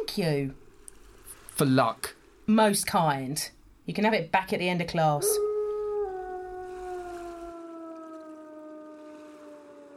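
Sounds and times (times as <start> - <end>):
speech: 0.2 - 0.6, 1.6 - 5.5
dog howling on a night with a full moon: 5.2 - 9.9.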